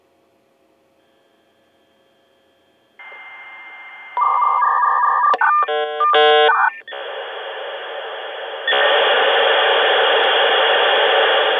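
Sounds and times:
computer modem: 3.0 - 11.4.

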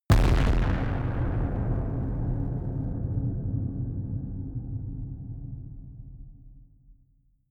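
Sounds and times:
distorted stereo explosions: 0.1 - 4.4.

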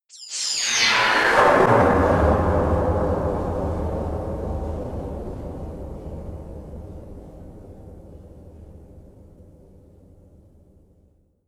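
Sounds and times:
cathedral ambience: 0.4 - 9.3.

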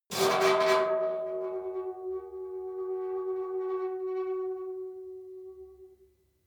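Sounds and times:
saturated industrial metal squeal: 0.1 - 5.1.

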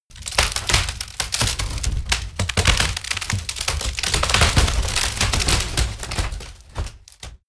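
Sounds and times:
large wood breaking: 0.1 - 7.4.

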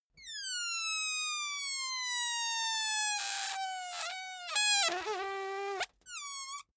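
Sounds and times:
balloon air release squeak, glitchy: 0.2 - 6.7.

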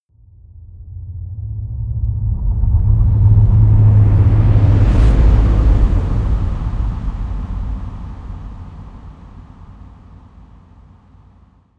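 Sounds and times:
fluttering rolling thunder: 2.2 - 10.6.

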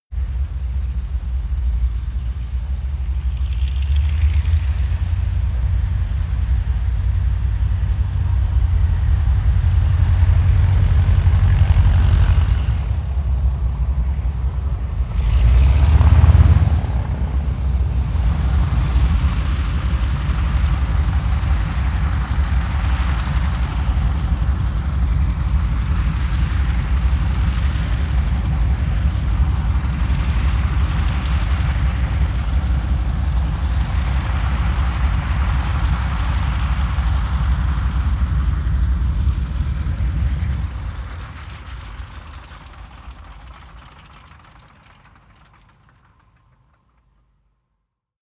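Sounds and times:
very distant Ju52 propeller plane maneuvering: 0.1 - 47.6.

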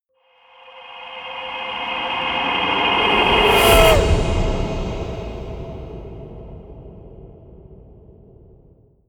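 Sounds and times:
rising whooshes: 0.6 - 7.0
haunted shout: 0.8 - 5.5.

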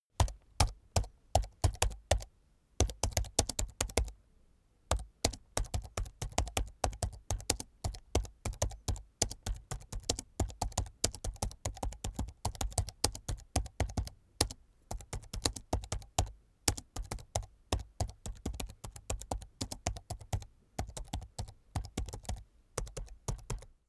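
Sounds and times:
slow hard typing on a laptop keyboard: 0.2 - 4.2, 4.9 - 23.7.

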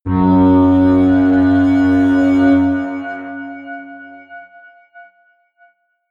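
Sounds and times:
low atmospheric feedback synthesizer drones: 0.1 - 4.3.

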